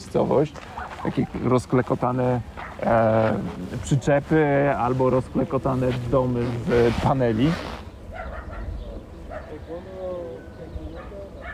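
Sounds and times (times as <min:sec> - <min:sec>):
steady rumbling outdoor background: 0:00.0 - 0:11.5
speech: 0:00.1 - 0:07.8
dogs barking back and forth at each other: 0:00.6 - 0:01.4, 0:02.4 - 0:02.9, 0:08.1 - 0:09.7, 0:10.4 - 0:11.5
dog drawn-out yelping whine: 0:08.1 - 0:08.7.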